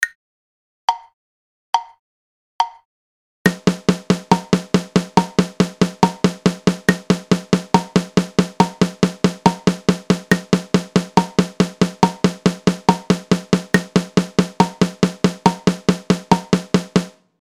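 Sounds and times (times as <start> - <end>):
drums playing sixteenth notes: 3.5 - 17.2.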